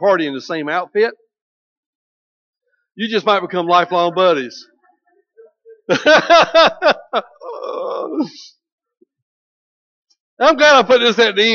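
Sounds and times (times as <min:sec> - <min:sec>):
speech: 0:00.0 - 0:01.2, 0:03.0 - 0:04.7, 0:05.9 - 0:08.6, 0:10.4 - 0:11.5
laughter-like vocal bursts: 0:05.9 - 0:08.5.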